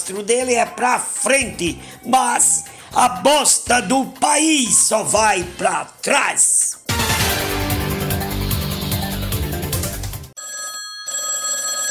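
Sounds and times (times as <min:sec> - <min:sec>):
loud busy music: 0:00.0 - 0:10.4
speech: 0:00.1 - 0:06.8
telephone bell ringing: 0:10.4 - 0:11.9.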